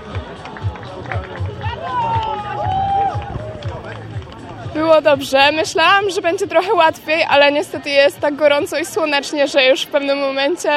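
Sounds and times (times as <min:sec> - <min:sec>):
spectators loudly cheering and shouting for female runners in a race: 0:00.9 - 0:04.6
speech: 0:05.0 - 0:10.7.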